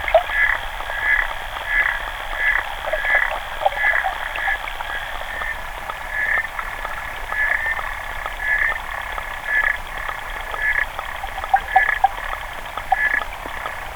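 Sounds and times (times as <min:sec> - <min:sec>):
Xenopus frog calling in short buzzy clicking bursts: 0:00.0 - 0:13.9
faint steady hiss: 0:00.0 - 0:13.9.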